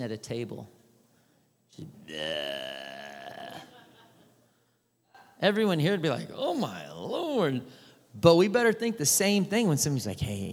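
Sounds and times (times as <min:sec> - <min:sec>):
speech: 0:00.0 - 0:00.8, 0:01.7 - 0:03.0, 0:05.4 - 0:10.5
loud belch: 0:02.0 - 0:03.8.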